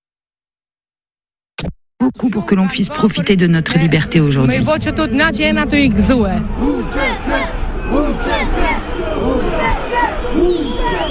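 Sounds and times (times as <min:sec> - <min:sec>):
speech: 0:01.6 - 0:08.7
protest crowd shouting and chanting in indignation: 0:02.8 - 0:11.0.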